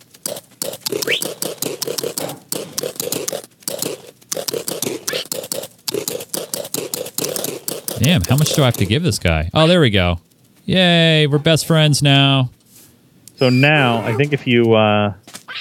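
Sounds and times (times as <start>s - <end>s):
computer mouse clicking: 0.0s - 9.1s
speech: 8.0s - 12.6s, 13.4s - 15.2s.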